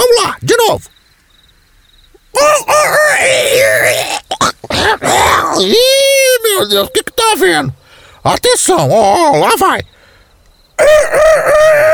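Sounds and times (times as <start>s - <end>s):
speech: 0.4s - 1.0s, 2.3s - 9.9s, 10.8s - 11.9s
loud human voice imitating a rooster crowing: 2.4s - 6.2s, 10.8s - 11.9s.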